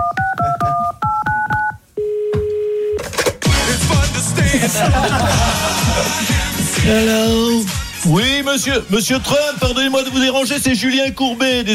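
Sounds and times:
touch-tone DTMF beeps dialing a phone number from a studio control room: 0.0s - 3.0s
laughter: 4.2s - 6.9s
speech: 4.7s - 11.7s.

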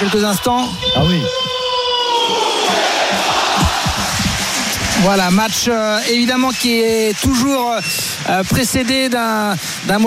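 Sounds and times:
speech: 0.0s - 1.5s, 5.0s - 10.0s
sustained stadium crowd roar: 0.0s - 6.4s
large stadium crowd chanting a rhythmic war cry in unison: 1.8s - 5.0s.

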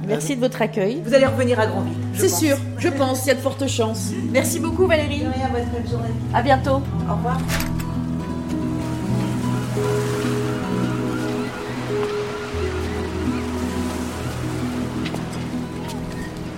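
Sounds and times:
speech: 0.1s - 7.8s, 9.8s - 10.4s
waves washing along the seafront at the port of Granville: 7.9s - 16.5s.

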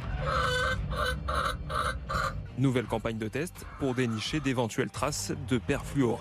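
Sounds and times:
hens clucking in a henhouse in France: 0.0s - 4.8s
speech: 2.6s - 6.1s.

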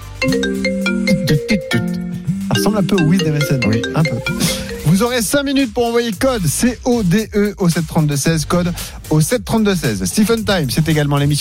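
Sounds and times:
speech: 0.2s - 0.7s, 1.3s - 1.9s, 2.8s - 11.4s
bright electronic ringtone chime: 0.2s - 5.2s.

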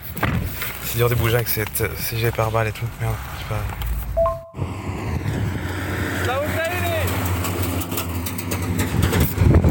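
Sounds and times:
speech: 1.0s - 3.9s
heavy military rocket-launcher truck rumbling past: 4.1s - 9.6s
brief tone: 4.2s - 4.6s.

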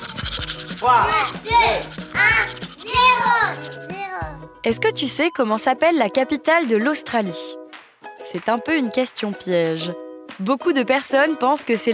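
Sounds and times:
scratchy toothbrush scrubbing against teeth: 0.0s - 4.4s
light melodic backing music: 0.0s - 11.9s
child's voice: 0.8s - 4.5s
speech: 0.8s - 7.6s, 8.3s - 11.9s.

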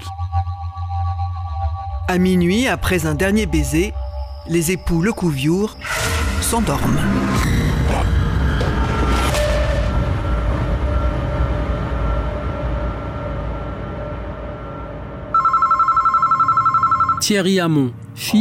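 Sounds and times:
dense rumbling low drone: 0.0s - 15.4s
speech: 2.1s - 7.5s, 17.3s - 18.3s
telephone ringing with rapid warbling electronic trill: 15.4s - 17.4s.

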